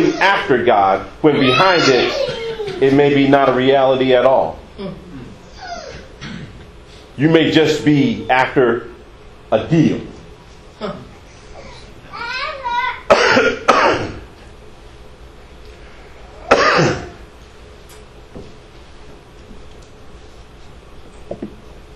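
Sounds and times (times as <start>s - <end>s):
speech: 0.2s - 5.0s, 7.2s - 8.9s, 9.5s - 10.1s, 10.8s - 11.1s
person giving a deliberate put-on cough: 13.1s - 14.2s, 16.5s - 17.2s.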